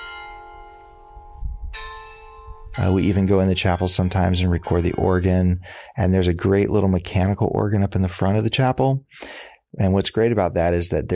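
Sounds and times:
church bells ringing on the hour: 0.0s - 5.3s
speech: 2.8s - 11.1s.

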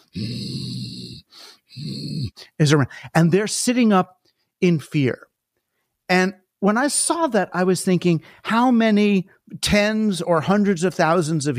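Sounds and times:
person imitating a saber-toothed tiger growl: 0.0s - 2.4s
speech: 0.1s - 0.5s, 2.6s - 5.3s, 6.1s - 11.5s.

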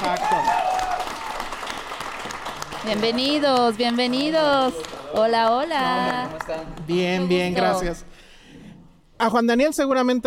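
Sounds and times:
canned studio audience applause with cheering: 0.0s - 7.0s
speech: 2.8s - 8.1s, 9.2s - 10.2s.

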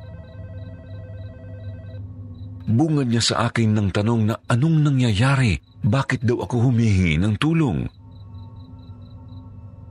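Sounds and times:
cellphone ringing with a repeating electronic chime: 0.0s - 2.0s
low hum: 0.0s - 9.8s
speech: 2.7s - 8.0s.

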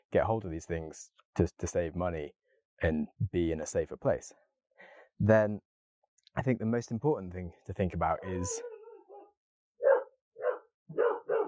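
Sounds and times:
speech: 0.1s - 4.4s, 5.2s - 5.7s, 6.4s - 8.7s
dogs barking: 8.4s - 11.4s.

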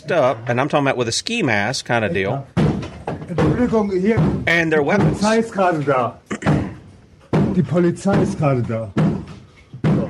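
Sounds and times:
speech: 0.0s - 6.2s, 7.6s - 9.1s
police SWAT team pounding heavy blows on a door: 2.6s - 5.4s, 6.5s - 10.0s.

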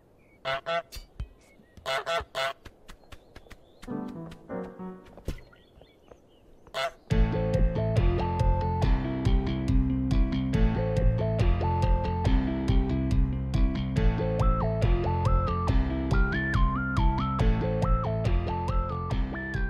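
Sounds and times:
cartoonish video game goose honking: 0.4s - 1.0s, 1.8s - 2.6s, 6.7s - 7.0s
bright upbeat video game music: 7.1s - 19.6s.

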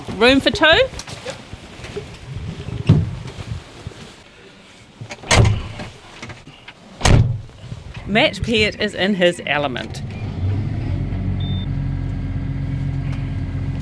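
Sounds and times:
speech: 0.2s - 1.0s, 8.1s - 10.1s
loud clunks: 7.0s - 7.5s
200 horsepower tractor engine starting and running, heard from inside its cab: 9.7s - 13.8s.

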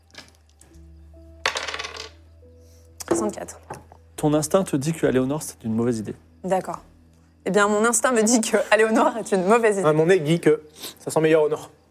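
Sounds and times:
dice rolling on a table: 1.4s - 2.2s
speech: 3.1s - 11.8s.

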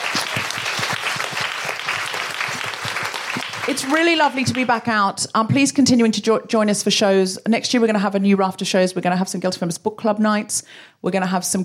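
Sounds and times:
audience applause at a live evening show: 0.0s - 4.8s
speech: 3.7s - 11.6s.

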